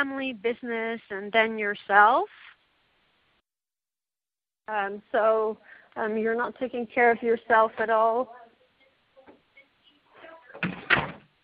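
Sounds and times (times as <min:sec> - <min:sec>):
speech: 0:00.0 - 0:02.5, 0:04.7 - 0:08.4
door pushed shut and latching: 0:10.5 - 0:11.4.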